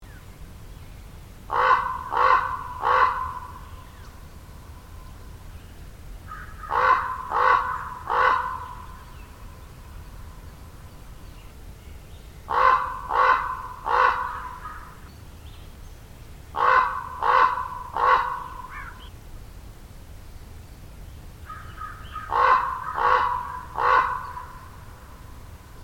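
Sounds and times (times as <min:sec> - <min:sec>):
common raven calling: 0:01.5 - 0:05.2, 0:06.2 - 0:10.8, 0:12.4 - 0:15.1, 0:16.5 - 0:19.2, 0:21.4 - 0:25.8.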